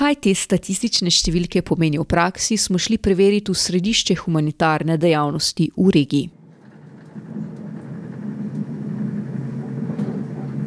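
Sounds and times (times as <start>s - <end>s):
speech: 0.1s - 6.4s
faint rattles: 6.3s - 10.6s
train running on rails toward Maribor, Slovenia: 6.3s - 10.6s.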